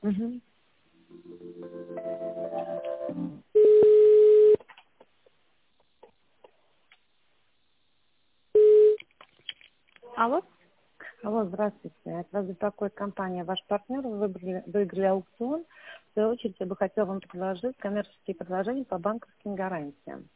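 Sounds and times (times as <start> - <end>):
speech: 0.0 - 0.5, 11.6 - 20.3
steady telephone beep: 3.6 - 4.6, 8.6 - 9.0.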